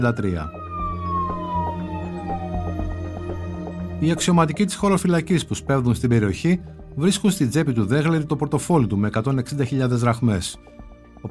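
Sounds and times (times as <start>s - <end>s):
speech: 0.0s - 0.6s, 4.0s - 11.2s
distant police car siren wailing: 0.0s - 4.8s.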